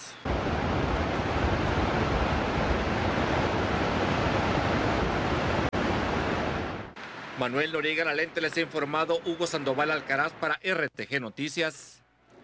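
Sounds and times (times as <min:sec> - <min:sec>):
heavy ocean surf from heavy ground swell roaring: 0:00.0 - 0:10.4
speech: 0:07.4 - 0:12.0.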